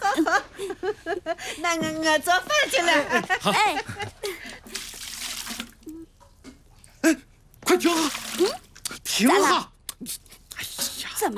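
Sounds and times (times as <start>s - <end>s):
laughter: 0.0s - 1.6s, 2.7s - 4.6s
speech: 1.5s - 4.0s, 9.2s - 9.7s
water poured into a washbasin: 4.5s - 6.0s, 7.7s - 8.8s.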